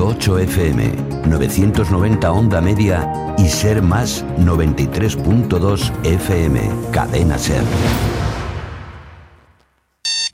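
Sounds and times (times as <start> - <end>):
speech: 0.2 - 8.2
booming sound: 7.4 - 9.8
alarm clock harsh electronic buzz: 10.0 - 10.3.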